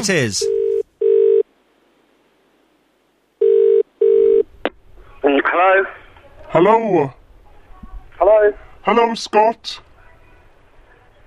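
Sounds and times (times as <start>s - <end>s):
speech: 0.0s - 0.6s, 6.5s - 7.2s, 8.2s - 9.9s
telephone ringing tone for an incoming phone call: 0.4s - 1.4s, 3.4s - 4.5s.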